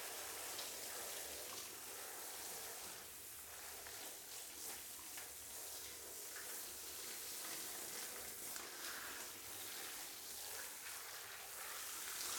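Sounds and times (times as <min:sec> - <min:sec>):
warm water poured over hair while shampooing: 0:00.1 - 0:12.3.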